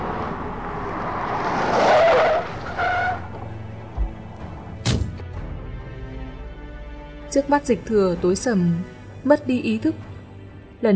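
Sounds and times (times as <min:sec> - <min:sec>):
car engine rumble: 0:00.0 - 0:06.7
car tires squealing in a long skid: 0:00.8 - 0:03.5
speech: 0:07.3 - 0:10.1.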